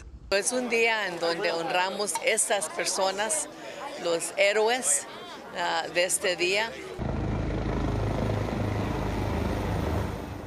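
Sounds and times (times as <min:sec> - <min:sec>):
speech: 0:00.3 - 0:07.0
helicopters flying overhead with rotor roar: 0:07.0 - 0:10.4.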